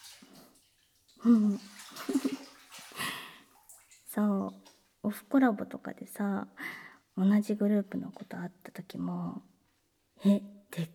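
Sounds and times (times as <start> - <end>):
water sloshing and splashing in a bathtub: 0.0 - 10.0
speech: 1.2 - 2.2, 4.2 - 9.5, 10.2 - 10.9
gurgling swirls as bath foam and water are scooped: 1.2 - 4.4.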